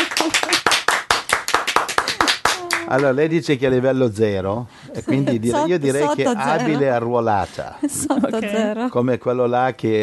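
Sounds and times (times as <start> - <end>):
applause from a small group: 0.0 - 3.2
speech: 2.9 - 10.0.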